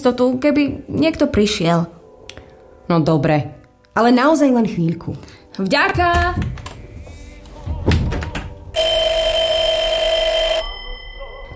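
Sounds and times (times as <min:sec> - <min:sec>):
speech: 0:00.0 - 0:02.0, 0:02.9 - 0:06.6
telephone ringing in a loud electric burst: 0:08.8 - 0:11.5.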